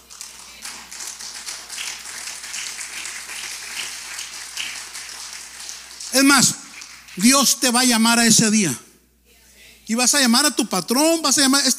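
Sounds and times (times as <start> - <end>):
audience applause: 0.0 - 7.5
speech: 6.1 - 6.6, 7.2 - 8.8, 9.9 - 11.7.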